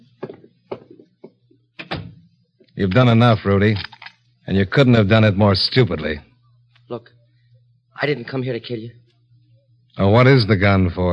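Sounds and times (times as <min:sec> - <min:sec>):
heavier fuller thud of a room door shutting: 0:01.8 - 0:02.2
speech: 0:02.8 - 0:03.9, 0:04.5 - 0:06.3, 0:06.9 - 0:07.2, 0:08.0 - 0:09.0, 0:10.0 - 0:11.1.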